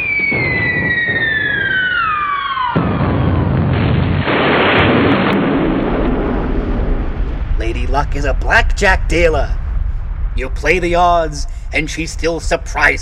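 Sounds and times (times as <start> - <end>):
high falling whistle of an incoming missile: 0.0 - 3.0
missile impact explosion in a dry desert: 0.0 - 13.0
speech: 8.0 - 9.6, 10.4 - 13.0.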